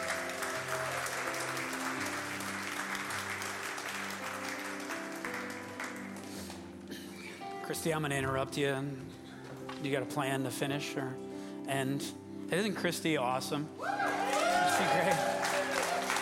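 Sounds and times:
audience cheering: 0.0 - 2.0, 13.8 - 16.1
audience applause: 0.0 - 6.7, 13.8 - 16.1
faint music: 0.0 - 16.1
speech: 7.7 - 9.2, 9.8 - 14.0, 14.8 - 15.3.

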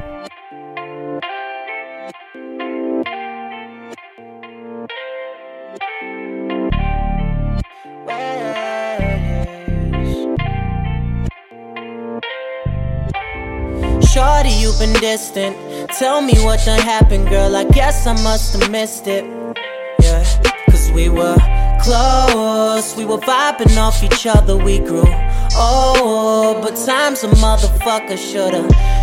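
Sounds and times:
hip-hop track with effects-heavy synth chords, deep bass hits and heavy beat: 0.0 - 29.0
speech: 14.8 - 19.4, 21.0 - 29.0.

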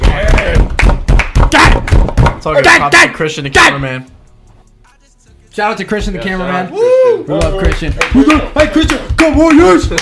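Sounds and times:
small group clapping: 0.0 - 2.6, 7.3 - 10.0
speech: 2.4 - 4.2, 5.6 - 10.0
person whooping: 6.7 - 7.3.

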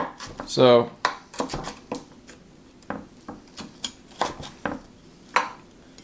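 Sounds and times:
sharp kitchen knife with a finger guard slicing food into thin slices: 1.3 - 2.4, 3.2 - 4.8.

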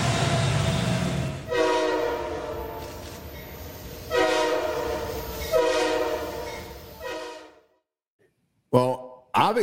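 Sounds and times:
low rumble of rolling rail cars: 0.0 - 7.6
train horn sound effect blasts: 1.5 - 3.0, 4.1 - 7.8.

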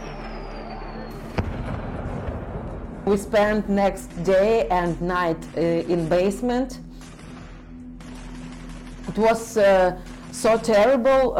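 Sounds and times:
sharp explosion: 1.2 - 3.1
speech: 3.1 - 6.8, 9.2 - 11.3.

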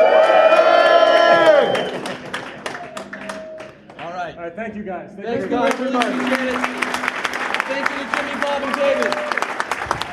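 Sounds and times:
crowd cheering and shouting on a count of three: 0.0 - 3.8, 5.4 - 10.1
scattered claps: 0.2 - 4.2, 5.4 - 10.1
speech: 4.7 - 7.0, 7.7 - 9.3.

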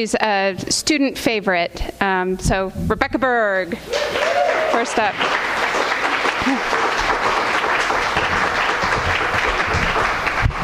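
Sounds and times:
speech: 0.0 - 5.5, 6.4 - 6.8
audience applause: 3.9 - 10.6.

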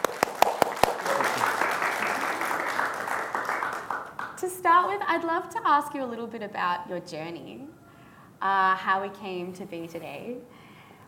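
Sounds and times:
small audience applause: 0.0 - 4.4
speech: 4.4 - 7.8, 8.4 - 10.6.

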